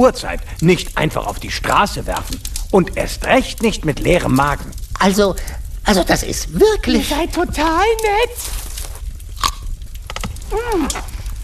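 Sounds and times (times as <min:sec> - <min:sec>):
speech: 0:00.0 - 0:08.6, 0:10.5 - 0:11.4
biting and chewing crunchy spicy radishes: 0:08.4 - 0:11.4.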